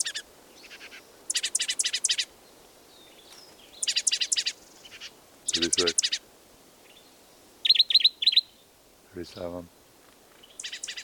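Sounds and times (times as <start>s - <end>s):
birds chirping trills: 0.0s - 2.3s, 2.9s - 6.2s, 6.9s - 9.8s, 10.4s - 11.0s
faint short bird calls: 0.0s - 2.3s, 3.1s - 6.2s, 10.4s - 11.0s
hiss: 0.0s - 11.0s
speech: 5.6s - 6.0s, 9.2s - 9.8s.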